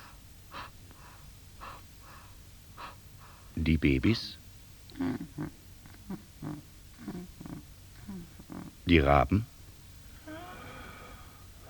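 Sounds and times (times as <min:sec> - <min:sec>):
soft breathing on a quiet night: 0:00.0 - 0:03.6, 0:10.0 - 0:11.6
low hiss: 0:00.0 - 0:11.6
speech: 0:03.7 - 0:04.4, 0:05.0 - 0:07.7, 0:08.6 - 0:09.5.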